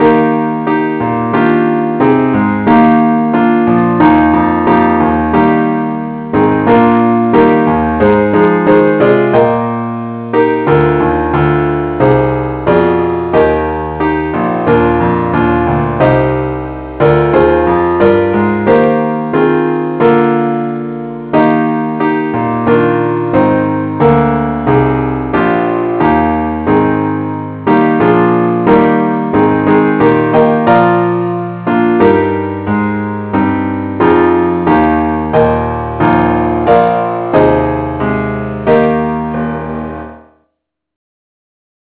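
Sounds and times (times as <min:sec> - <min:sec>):
keyboard keys: 0:00.0 - 0:40.3.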